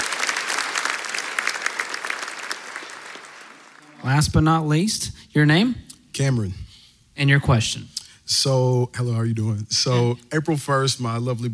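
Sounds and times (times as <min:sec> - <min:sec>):
audience clapping: 0:00.0 - 0:04.2
speech: 0:04.0 - 0:06.6, 0:07.2 - 0:11.5.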